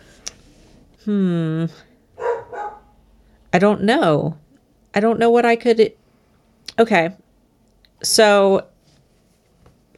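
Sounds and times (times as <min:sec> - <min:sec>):
speech: 0:01.0 - 0:01.9, 0:03.6 - 0:06.0, 0:06.8 - 0:07.2, 0:08.0 - 0:08.7
male dog barking: 0:02.2 - 0:03.0.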